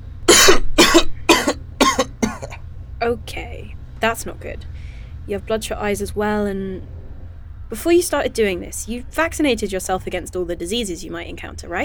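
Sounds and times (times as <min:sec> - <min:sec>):
person coughing: 0:00.3 - 0:02.6
speech: 0:03.0 - 0:04.7, 0:05.3 - 0:07.0, 0:07.7 - 0:11.8.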